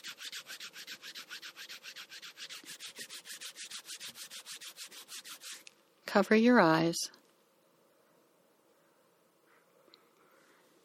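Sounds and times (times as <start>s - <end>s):
palms rubbing together briskly: 0.0s - 5.8s
speech: 6.1s - 7.2s.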